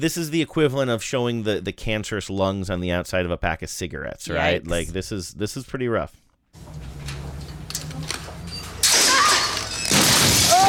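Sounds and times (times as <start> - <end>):
speech: 0.0 - 6.8
body crashing through a glass case, shattering: 8.8 - 10.6.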